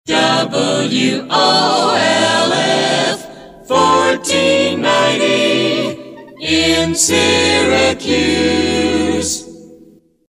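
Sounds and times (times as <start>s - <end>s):
a cappella singing: 0.1s - 10.0s.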